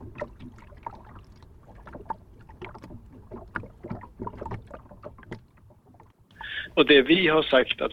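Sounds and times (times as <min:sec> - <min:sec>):
water lapping against the hull of a fishing boat at a quay in Sweden: 0:00.0 - 0:07.9
speech: 0:06.6 - 0:07.9.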